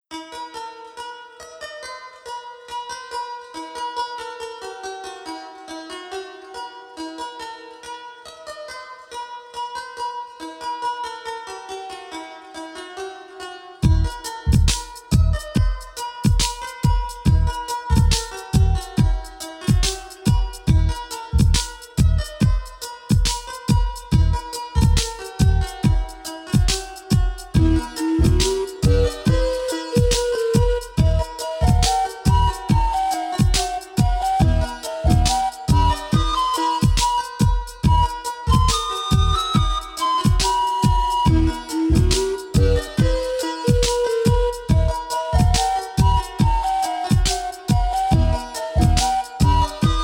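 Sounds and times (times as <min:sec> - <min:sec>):
sensual rhythmic music tuned to 432 Hz: 0:13.8 - 0:50.0.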